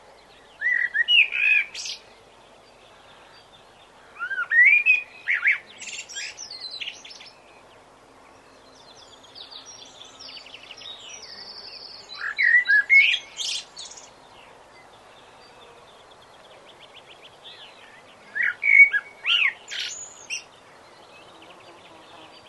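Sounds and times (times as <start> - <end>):
common blackbird whistled song: 0.4 - 2.1, 4.2 - 7.6, 8.7 - 14.1, 16.3 - 21.4.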